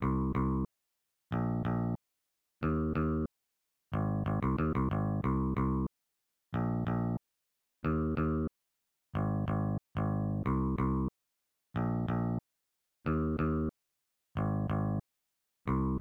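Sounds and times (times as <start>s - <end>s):
rock and roll bass arrangement: 0.0s - 0.7s, 1.3s - 2.0s, 2.6s - 3.3s, 4.0s - 5.9s, 6.6s - 7.2s, 7.8s - 8.5s, 9.2s - 11.1s, 11.8s - 12.4s, 13.1s - 13.7s, 14.4s - 15.0s, 15.7s - 15.9s.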